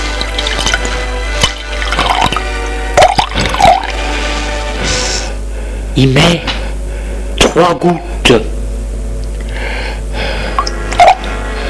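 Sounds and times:
water poured into a drinking glass: 0:00.0 - 0:04.1
steady low hum: 0:00.0 - 0:11.6
speech: 0:06.0 - 0:06.5, 0:07.6 - 0:08.5.

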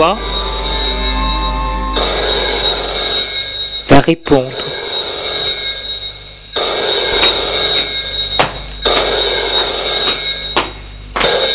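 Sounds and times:
speech: 0:00.0 - 0:00.4, 0:04.0 - 0:04.9
low hum: 0:00.0 - 0:03.9
telephone ringing: 0:00.0 - 0:11.5.

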